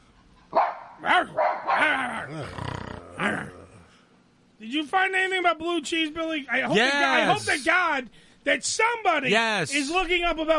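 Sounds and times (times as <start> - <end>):
big dog barking: 0.5 - 2.0
big dog low rumbling growl: 2.1 - 3.9
speech: 2.3 - 3.4, 4.7 - 10.5.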